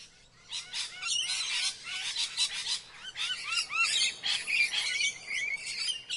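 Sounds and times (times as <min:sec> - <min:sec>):
birds chirping: 0:00.0 - 0:06.1.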